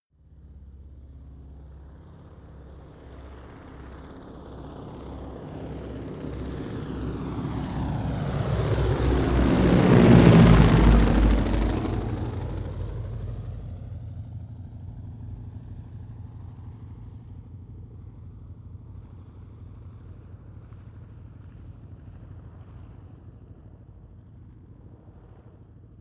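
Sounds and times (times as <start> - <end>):
Ju52 propeller plane flying overhead: 0.2 - 26.0.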